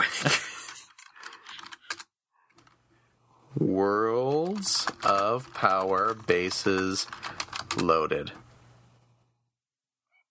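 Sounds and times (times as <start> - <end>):
clattering computer keyboard typing: 0.7 - 2.8, 4.2 - 8.4
speech: 3.8 - 8.4.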